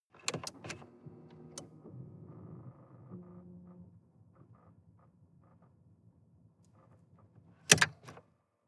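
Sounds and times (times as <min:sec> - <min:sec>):
sports car ignition switching on and off inside the car: 0:00.2 - 0:05.8, 0:07.6 - 0:08.2.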